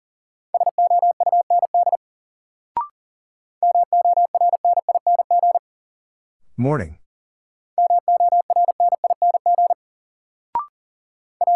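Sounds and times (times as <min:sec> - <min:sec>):
rapid Morse code beeps at a single steady pitch: 0:00.6 - 0:02.0, 0:03.6 - 0:05.6, 0:07.8 - 0:09.8, 0:11.4 - 0:11.5
speech: 0:06.6 - 0:07.0.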